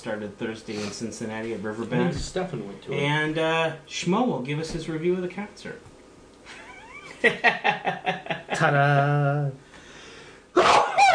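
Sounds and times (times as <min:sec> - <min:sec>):
speech: 0:00.0 - 0:05.9, 0:07.2 - 0:09.6
laughter: 0:06.5 - 0:09.0
loud sneeze: 0:10.5 - 0:11.1.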